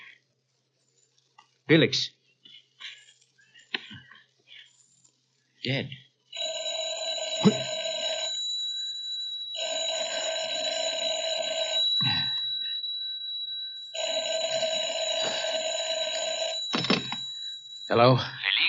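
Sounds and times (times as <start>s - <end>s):
speech: 1.7s - 2.2s, 5.6s - 6.0s, 7.4s - 7.7s, 18.0s - 18.4s
telephone bell ringing: 6.4s - 18.4s.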